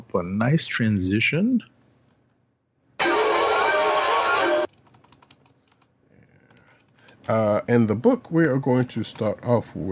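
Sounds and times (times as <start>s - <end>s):
speech: 0.1s - 1.7s, 7.3s - 9.9s
loud dense steady sound: 3.0s - 4.7s
typing on a keyboard: 4.7s - 5.9s, 6.5s - 7.4s.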